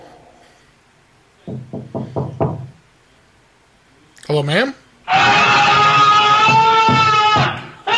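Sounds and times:
sharp hollow knocking on a wall: 1.5s - 2.8s, 6.0s - 7.8s
speech: 4.3s - 5.4s.

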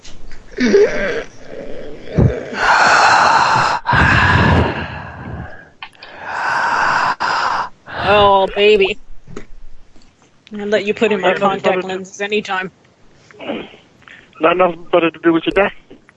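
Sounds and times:
speech: 0.6s - 1.3s, 8.1s - 9.0s, 10.5s - 12.8s, 13.4s - 13.8s, 14.4s - 15.8s
person taking deep breaths: 2.2s - 8.3s.

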